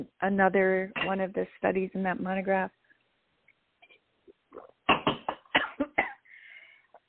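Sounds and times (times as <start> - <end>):
speech: 0.0 - 2.8
harsh coughing fit: 4.9 - 6.3
wheezy intake of breath: 6.2 - 6.9.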